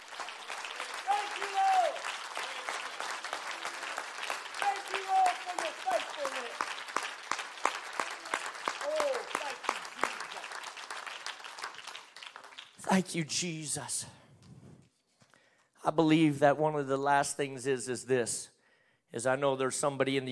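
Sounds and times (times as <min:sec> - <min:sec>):
audience clapping at a church worship service: 0:00.0 - 0:13.2
speech: 0:12.9 - 0:14.2, 0:15.9 - 0:18.5, 0:19.1 - 0:20.3.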